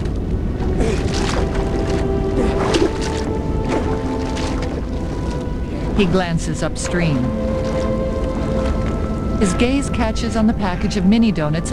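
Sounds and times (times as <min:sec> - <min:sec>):
steady loud rush of flowing river water: 0:00.0 - 0:10.5
man swimming through river water to a rocky shore: 0:00.6 - 0:06.2, 0:07.0 - 0:09.1
speech: 0:06.0 - 0:07.5, 0:09.4 - 0:11.7.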